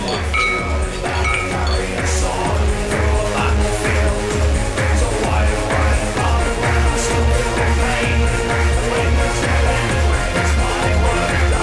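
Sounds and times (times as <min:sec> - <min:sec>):
glasses clinking in a toast: 0:00.0 - 0:02.3
music with a thumping beat: 0:00.0 - 0:11.6.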